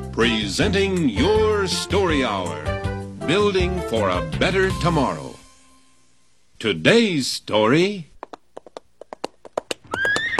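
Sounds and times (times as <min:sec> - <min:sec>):
speech: 0:00.2 - 0:05.4, 0:06.6 - 0:08.1
ridden horse's hooves galloping: 0:08.1 - 0:10.3
horse whinnying: 0:09.7 - 0:10.3.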